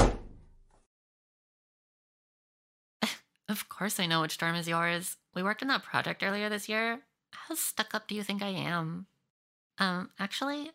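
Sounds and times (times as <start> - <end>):
door banging shut: 0.0 - 0.6
speech: 3.5 - 9.1, 9.8 - 10.7.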